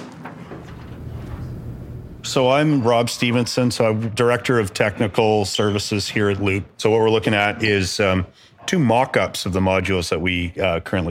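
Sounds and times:
door opening with sliding scraping noise: 0.0 - 2.2
speech: 2.2 - 11.0.

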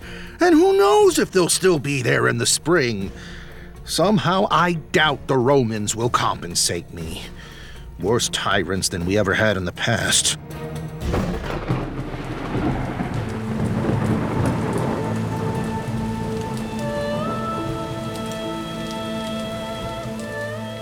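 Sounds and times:
speech: 0.4 - 7.4, 8.0 - 11.8
deep rolling rumble of thunder: 11.0 - 20.3
steady heavy rain: 11.1 - 20.8
low sustained musical drone: 11.5 - 20.8.

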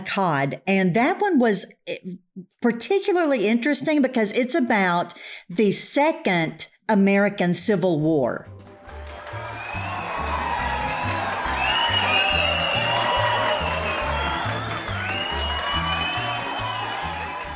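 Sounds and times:
speech: 0.1 - 8.5
big crowd cheering and clapping: 8.6 - 17.5
whistles: 9.4 - 17.5.

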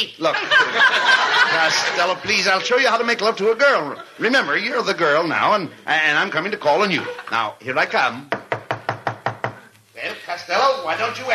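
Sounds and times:
speech: 0.0 - 8.4, 10.4 - 11.3
laughter: 0.2 - 4.8, 6.7 - 7.5
knocking on a door: 8.3 - 9.6.

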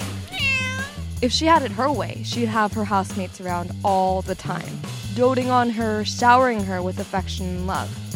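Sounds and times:
female house cat meowing: 0.3 - 1.1
speech: 1.2 - 8.0.

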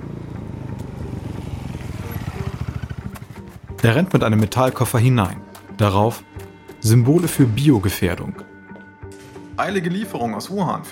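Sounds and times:
motorcycle engine roaring as the bike speeds past along a street: 0.0 - 4.2
speech: 3.8 - 8.5, 9.6 - 10.9.

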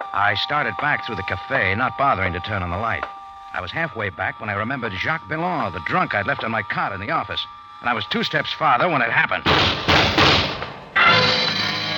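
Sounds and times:
speech: 0.1 - 9.9
muffled gunshots behind a closed door: 9.5 - 10.8.

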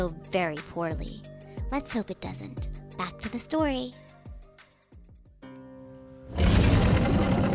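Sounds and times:
speech: 0.0 - 4.0
loud harsh roar of a dragon in a cave: 6.3 - 7.5
low growling grunts: 6.3 - 7.5
sustained rumbling tone: 6.4 - 7.5.

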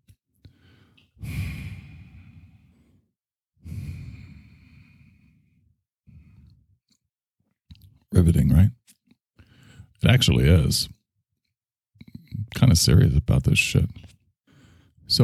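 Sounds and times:
heavy loud breathing against a microphone: 0.5 - 6.6
speech: 8.2 - 8.8, 10.0 - 11.0, 12.6 - 14.2, 15.1 - 15.2.

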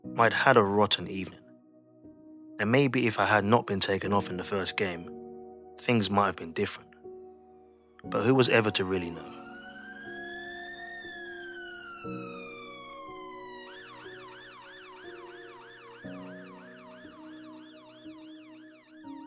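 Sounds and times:
speech: 0.2 - 1.4, 2.6 - 5.2, 5.8 - 6.9, 8.0 - 9.4
ambulance siren wailing and yelping as the ambulance arrives: 8.1 - 19.2.

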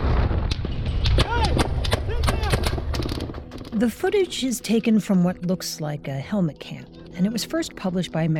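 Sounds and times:
gunfire from a gun mounted on an army truck: 0.0 - 3.3
raised voices shouting: 1.2 - 2.7
speech: 3.8 - 8.3.

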